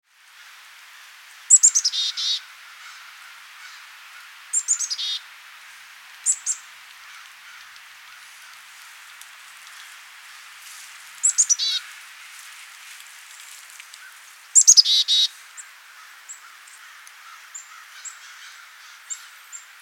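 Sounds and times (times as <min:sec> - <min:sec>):
Black-capped chickadee Poecile atricapillus calling: 0:01.5 - 0:05.3, 0:06.2 - 0:09.0, 0:11.2 - 0:12.0, 0:14.0 - 0:19.7.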